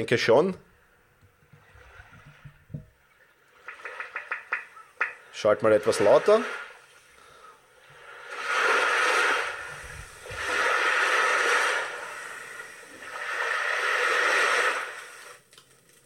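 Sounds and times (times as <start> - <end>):
speech: 0.0 - 0.7, 5.4 - 6.6
ocean surf from a noise app: 3.6 - 6.9, 8.0 - 15.4.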